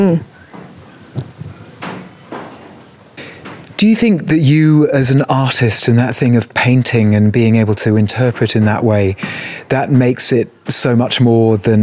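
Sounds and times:
speech: 0:00.0 - 0:00.3, 0:03.8 - 0:11.8
timber of a wool shed in Australia creaking and ticking as it warms in the sun: 0:00.4 - 0:03.8.

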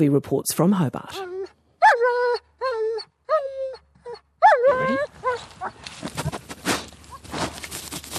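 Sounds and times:
speech: 0:00.0 - 0:01.4
black German shepherd sniffer dog giving short high whines: 0:01.2 - 0:05.8
rustling: 0:05.1 - 0:08.1
German shepherd sniffer dog snuffling and sniffing the ground on alpine slopes: 0:05.2 - 0:08.1.

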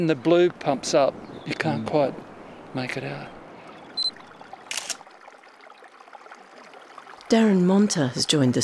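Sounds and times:
speech: 0:00.0 - 0:03.4, 0:07.3 - 0:08.6
snowmelt creek trickling at nightfall: 0:00.0 - 0:08.6
high-pitched chirp: 0:04.0 - 0:04.2.

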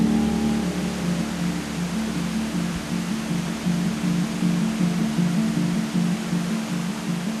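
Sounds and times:
river rushing past a house: 0:00.0 - 0:07.3.

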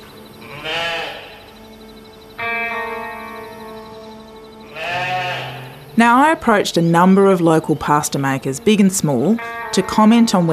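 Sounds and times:
sheep bleating: 0:00.4 - 0:01.5, 0:02.4 - 0:06.0, 0:09.3 - 0:10.5
speech: 0:06.0 - 0:10.5.

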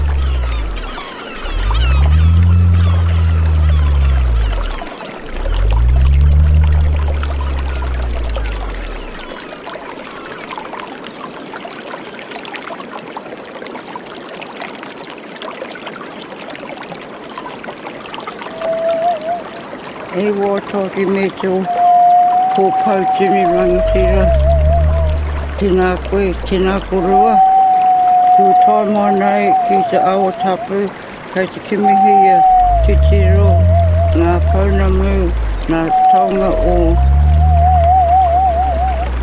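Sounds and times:
deep swelling bass tones: 0:00.0 - 0:09.3, 0:21.7 - 0:28.6, 0:31.8 - 0:39.2
river water rushing: 0:00.0 - 0:11.5, 0:16.0 - 0:39.2
speech: 0:20.4 - 0:21.8, 0:22.6 - 0:24.4, 0:25.6 - 0:27.5, 0:28.4 - 0:33.6, 0:34.2 - 0:37.1.

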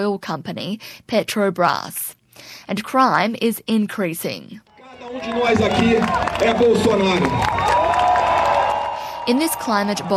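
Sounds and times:
speech: 0:00.0 - 0:07.8, 0:09.3 - 0:10.1
large crowd cheering and shouting at a political rally in Brazil: 0:04.8 - 0:10.1
scattered clapping at a political rally: 0:05.0 - 0:09.0.

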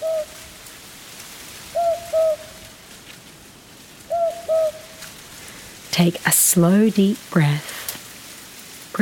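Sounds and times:
owl hooting soft low calls: 0:00.0 - 0:00.4, 0:01.7 - 0:02.7, 0:04.1 - 0:05.1
steady hiss of noise: 0:00.0 - 0:08.9
speech: 0:06.0 - 0:07.8.

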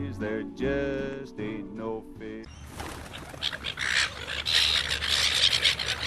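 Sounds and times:
speech: 0:00.1 - 0:05.2
seagulls squawking and crying: 0:02.5 - 0:06.0.

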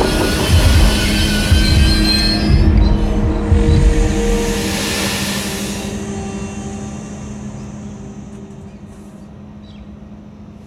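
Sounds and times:
train emergency braking with steel wheels screeching on rails: 0:00.0 - 0:03.4, 0:04.3 - 0:09.2
heavy train rumble: 0:00.0 - 0:10.6.

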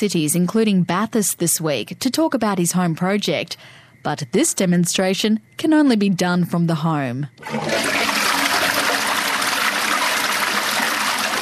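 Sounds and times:
speech: 0:00.0 - 0:08.2
water sloshing and trickling in a toilet bowl from a hand dipped in: 0:07.4 - 0:11.4.

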